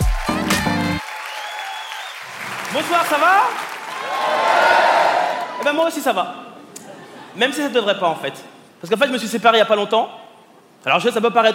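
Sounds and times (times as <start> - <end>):
audience applause and cheering: 0.0 - 5.6
speech: 2.8 - 4.4, 5.6 - 6.4, 7.4 - 10.2, 10.8 - 11.5.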